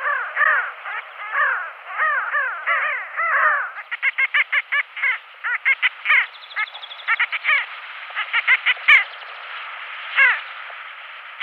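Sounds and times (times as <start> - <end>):
pin-tailed sandgrouse nasal calls: 0.0 - 9.1
steady hiss: 0.0 - 11.4.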